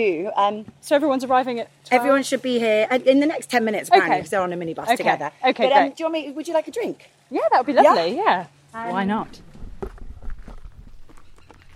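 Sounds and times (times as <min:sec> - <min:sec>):
speech: 0:00.0 - 0:09.5
footsteps walking among grapevines in a vineyard: 0:09.2 - 0:11.7.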